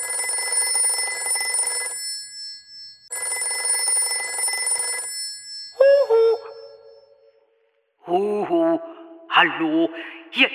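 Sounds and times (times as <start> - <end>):
telephone bell ringing: 0.0 - 7.1
speech: 8.1 - 10.5.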